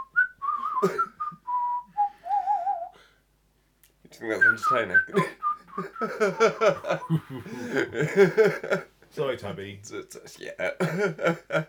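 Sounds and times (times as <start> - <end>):
person whistling a short wavering tune: 0.0 - 3.0, 4.4 - 7.4
speech: 0.8 - 1.1, 4.2 - 11.6
laughter: 5.1 - 8.8, 10.8 - 11.6.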